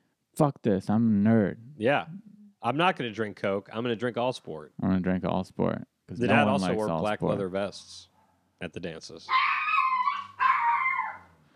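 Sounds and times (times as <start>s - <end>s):
speech: 0.4s - 9.6s
dog whining: 9.3s - 11.4s.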